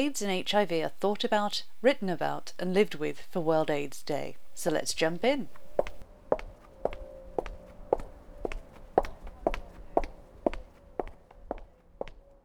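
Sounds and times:
speech: 0.0 - 5.6
footsteps on pavement on a residential street in London: 0.0 - 12.4
low street hum: 0.0 - 12.4.

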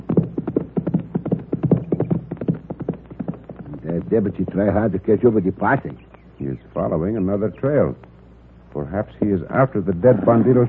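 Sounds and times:
horse hooves clip-clopping: 0.0 - 6.4
speech: 4.1 - 8.0, 8.8 - 10.6.

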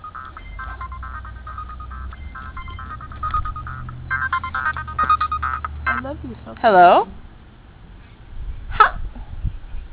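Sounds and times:
mobile phone ringtone: 0.0 - 6.2
speech: 6.2 - 7.2.

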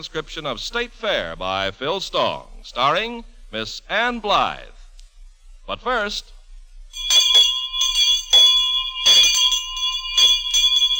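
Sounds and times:
speech: 0.0 - 4.8, 5.7 - 7.2
bell ringing: 7.0 - 10.9.

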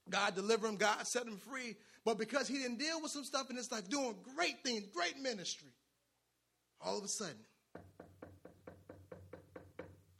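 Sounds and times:
speech: 0.1 - 5.8, 6.8 - 8.0
firm knocks on a door: 7.7 - 10.1.

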